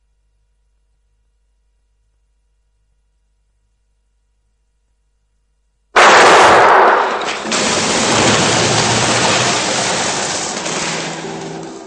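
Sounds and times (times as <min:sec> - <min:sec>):
loud revolver gunshot: 0:06.0 - 0:09.7.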